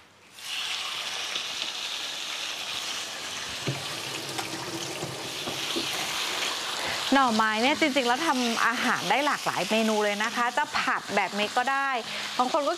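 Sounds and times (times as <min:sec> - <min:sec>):
chicken pieces searing in a hot pan: 0:00.3 - 0:12.7
speech: 0:07.1 - 0:12.7.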